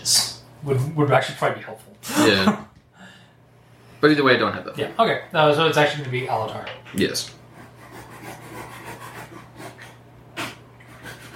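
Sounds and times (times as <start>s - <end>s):
steady low hum: 0.0s - 11.3s
speech: 0.6s - 2.7s, 4.0s - 7.4s
rasping back-and-forth sawing strokes: 7.5s - 11.3s.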